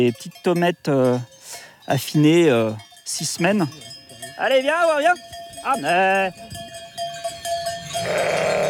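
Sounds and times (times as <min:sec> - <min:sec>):
speech: 0:00.0 - 0:01.3, 0:01.9 - 0:06.6, 0:08.0 - 0:08.6
ewe bleating at a sheep's-milk tomme farm: 0:08.0 - 0:08.6.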